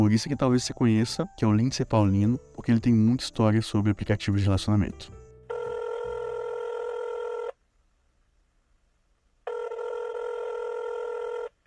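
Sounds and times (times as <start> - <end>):
speech: 0.0 - 5.2
telephone ringing with electronic trilling tone for an incoming call: 5.5 - 7.5, 9.5 - 11.6.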